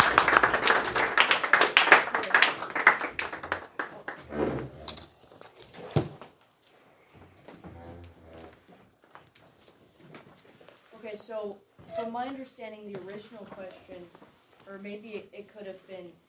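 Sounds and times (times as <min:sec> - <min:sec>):
audience applause: 0:00.0 - 0:04.9
speech: 0:11.4 - 0:16.2.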